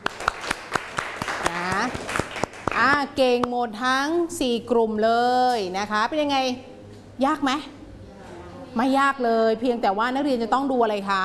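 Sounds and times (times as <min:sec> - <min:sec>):
classroom students clapping in rhythm: 0:00.0 - 0:03.6
speech: 0:03.1 - 0:07.8, 0:08.7 - 0:11.2.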